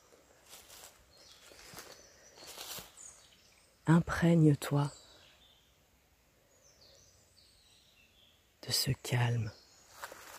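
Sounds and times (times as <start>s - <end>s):
faint birdsong in a forest on an Indian-summer morning: 0.0s - 10.3s
soft crunching footsteps on forest ground: 0.4s - 3.2s, 9.9s - 10.3s
speech: 3.9s - 5.0s, 8.7s - 9.6s.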